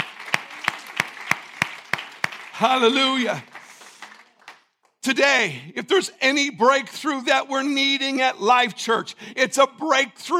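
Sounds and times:
applause: 0.0s - 5.0s
crowd clapping in rhythm: 0.0s - 5.1s
speech: 2.6s - 3.5s, 5.0s - 10.3s.

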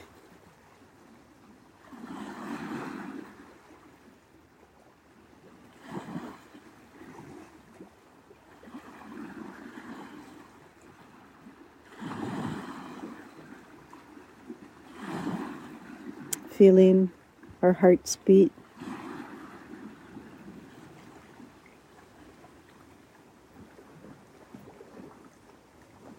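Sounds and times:
waves on a big lake washing ashore: 0.0s - 26.1s
speech: 16.6s - 18.6s.

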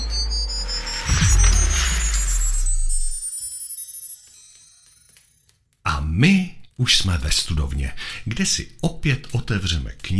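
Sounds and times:
synthetic startup sound of a phone powering on: 0.0s - 5.5s
speech: 6.2s - 10.1s.

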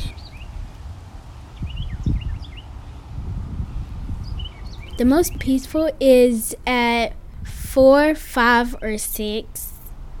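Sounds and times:
small birds tweeting outdoors: 0.0s - 0.8s, 1.5s - 5.8s
steady low outdoor rumble: 0.0s - 10.1s
speech: 5.0s - 9.7s.

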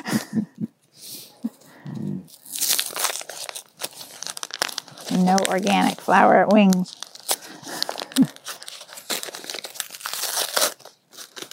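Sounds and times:
tape pulled and torn to patch small broken plates: 2.3s - 11.5s
speech: 5.2s - 7.0s.

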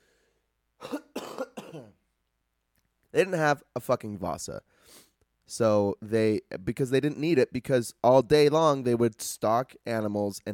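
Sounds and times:
harsh raspy coughs: 0.8s - 2.0s
speech: 3.1s - 10.5s.

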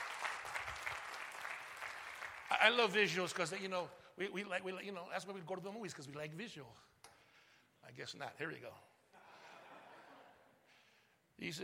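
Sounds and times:
audience applauding: 0.0s - 3.6s
speech: 2.6s - 6.9s, 7.9s - 8.9s, 11.4s - 11.6s.

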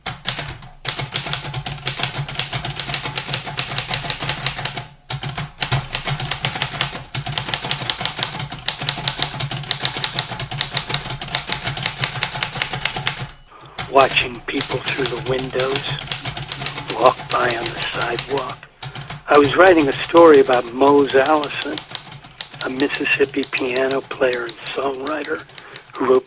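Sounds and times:
typing on an old manual typewriter: 0.0s - 26.2s
speech: 14.0s - 16.1s, 17.0s - 18.6s, 19.3s - 21.9s, 22.7s - 26.2s.

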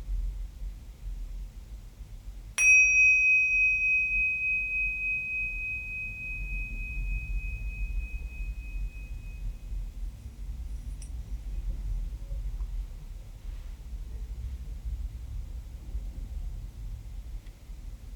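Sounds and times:
quiet low hum: 0.0s - 15.6s
mindfulness bell ringing: 2.6s - 9.5s.

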